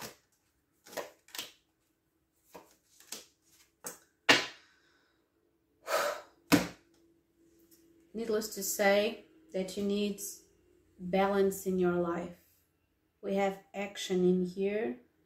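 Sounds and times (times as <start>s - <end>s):
tarot cards pulled and laid down: 0.0s - 1.7s, 2.4s - 4.6s
speech: 8.2s - 10.4s, 11.0s - 12.4s, 13.2s - 15.0s.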